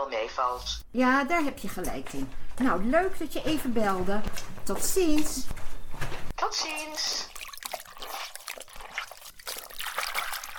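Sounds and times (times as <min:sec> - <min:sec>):
speech: 0:00.0 - 0:07.4
water trickling and splashing in a bath: 0:06.8 - 0:10.5.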